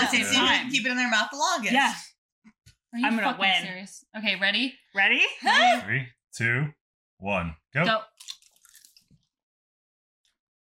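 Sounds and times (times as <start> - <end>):
speech: 0.1 - 2.1, 2.9 - 8.4
chewing gum with Vicks VapoRub: 8.2 - 9.1.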